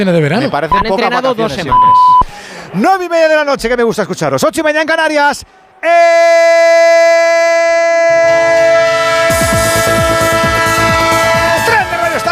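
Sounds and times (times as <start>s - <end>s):
speech: 0.0s - 9.0s
train horn blast: 8.0s - 12.3s.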